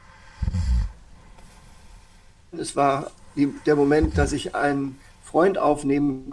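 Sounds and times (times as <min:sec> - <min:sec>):
speech: 0:02.5 - 0:06.3
recorded human snoring: 0:03.4 - 0:04.5.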